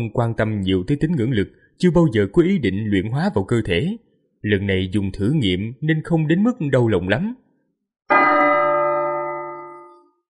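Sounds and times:
speech: 0.0 - 7.4
bell ringing on a Buddhist holy mountain: 8.1 - 10.2.

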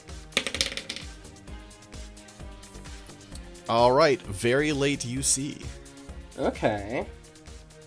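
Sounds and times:
dice clattering across a hard tabletop: 0.4 - 1.2
speech: 3.7 - 5.8, 6.4 - 7.2.

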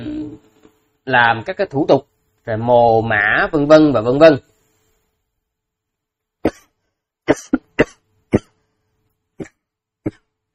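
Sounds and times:
speech: 1.0 - 4.5, 7.3 - 7.6
person coughing after choking on saliva: 6.4 - 8.7.

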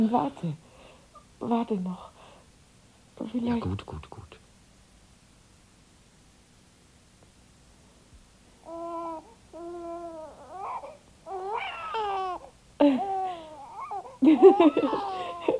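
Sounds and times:
speech: 0.0 - 0.6, 1.4 - 2.2, 3.2 - 4.3, 14.2 - 15.5
baby boy crying in wailing bursts: 8.6 - 15.5.

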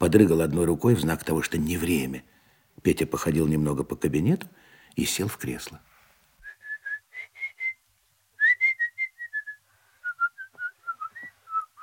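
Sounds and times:
speech: 0.0 - 5.9
person whistling a tune: 6.4 - 7.8, 8.4 - 11.8.

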